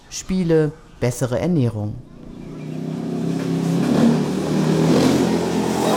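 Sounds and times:
speech: 0:00.1 - 0:02.1
motorcycle engine revving and riding off over unpaved sandy roads: 0:02.0 - 0:05.9.

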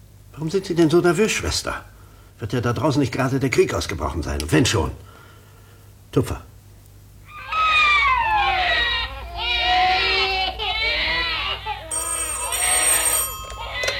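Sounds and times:
speech: 0:00.4 - 0:05.1, 0:06.1 - 0:06.5
several babies crying in a hospital nursery ward: 0:07.3 - 0:12.1, 0:13.6 - 0:13.9
telephone-like ringing tone: 0:11.9 - 0:13.9.

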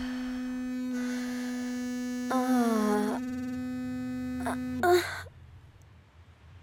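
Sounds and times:
vibrator buzzing at a low even pitch: 0:00.0 - 0:05.6.

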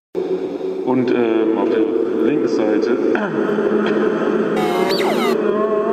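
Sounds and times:
speech: 0:00.3 - 0:05.8
squeaky whistling burst echoing in a large resonant room: 0:04.6 - 0:05.4.

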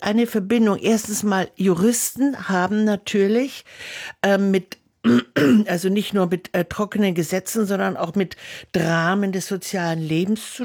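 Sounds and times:
speech: 0:00.0 - 0:10.6
person clearing throat with short rough voiced rasps: 0:05.1 - 0:05.6.

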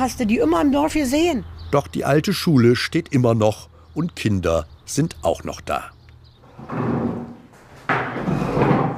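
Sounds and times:
speech: 0:00.0 - 0:06.0, 0:06.6 - 0:07.0
wooden chairs lifted down from tables in an old primary school: 0:06.4 - 0:08.9.

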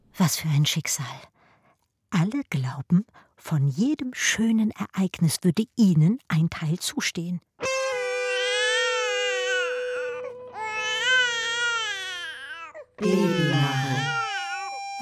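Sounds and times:
speech: 0:00.2 - 0:01.4, 0:02.1 - 0:07.7, 0:13.0 - 0:14.1
infant crying in long wailing bursts: 0:07.8 - 0:14.9.

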